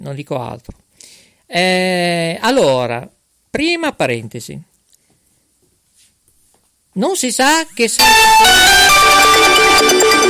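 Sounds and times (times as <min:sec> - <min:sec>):
speech: 0:00.1 - 0:00.8, 0:01.5 - 0:04.7, 0:07.0 - 0:10.2
electronic phone ringtone melody for an incoming call: 0:08.0 - 0:10.2.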